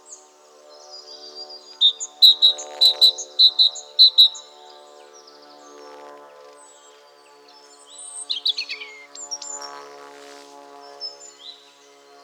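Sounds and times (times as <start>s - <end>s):
great tit Parus major calls: 1.2s - 4.6s.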